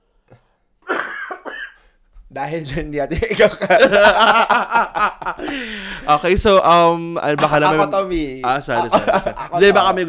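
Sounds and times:
person coughing in rough throaty bursts: 0:00.3 - 0:01.9
speech: 0:02.3 - 0:10.0
laughter: 0:03.2 - 0:06.2, 0:07.3 - 0:10.0
soft breath: 0:05.4 - 0:06.1.

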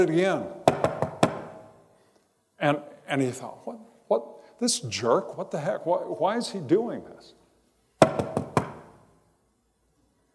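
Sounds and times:
speech: 0:00.0 - 0:00.6, 0:02.6 - 0:07.4
sharp knocking on a door: 0:00.6 - 0:01.6, 0:08.0 - 0:08.9.

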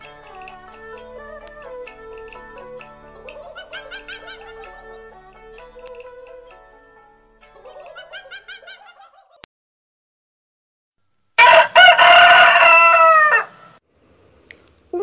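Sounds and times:
laughter: 0:03.3 - 0:04.7, 0:07.6 - 0:09.4
rooster crowing: 0:11.4 - 0:13.8.

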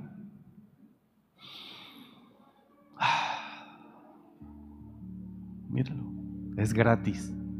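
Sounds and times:
person breathing heavily: 0:01.4 - 0:02.4, 0:03.0 - 0:04.2
speech: 0:05.8 - 0:07.4.

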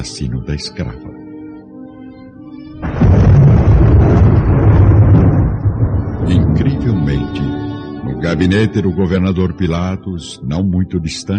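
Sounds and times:
speech: 0:00.0 - 0:01.1, 0:08.2 - 0:11.3
thunder of a sudden storm cracking and rumbling: 0:02.8 - 0:07.4.

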